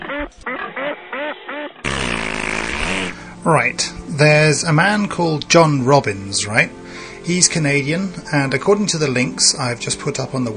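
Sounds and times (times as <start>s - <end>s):
duck quack sound effect: 0.0s - 3.2s
speech: 0.1s - 1.8s, 3.4s - 10.5s.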